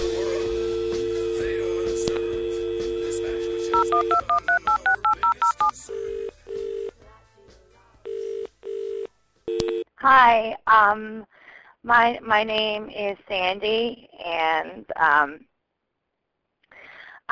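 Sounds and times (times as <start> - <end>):
repeating telephone ringback tone: 0.7 - 6.9
steady telephone dial tone: 2.0 - 6.9, 8.1 - 9.8
touch-tone keypad beeps: 3.7 - 5.7
speech: 4.0 - 4.4, 10.1 - 15.5.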